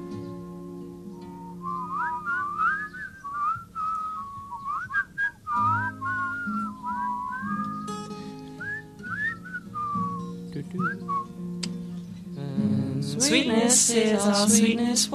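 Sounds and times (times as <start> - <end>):
person whistling a wavering sliding melody: 1.2 - 11.3
speech: 13.2 - 15.1.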